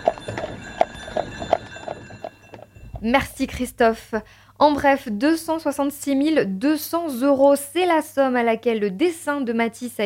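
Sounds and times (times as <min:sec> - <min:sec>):
horse hooves clip-clopping pulling a carriage: 0:00.0 - 0:03.2
continuous hum: 0:00.0 - 0:09.5
speech: 0:03.0 - 0:10.0.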